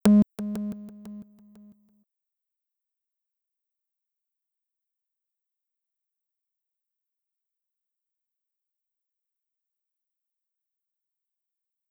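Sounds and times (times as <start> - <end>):
synth sound: 0.0 - 1.7.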